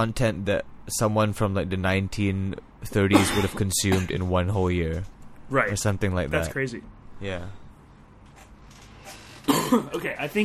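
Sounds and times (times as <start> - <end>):
speech: 0.0 - 7.6, 9.7 - 10.4
person coughing with a raspy throat-clearing quality: 3.1 - 4.2, 9.4 - 10.0.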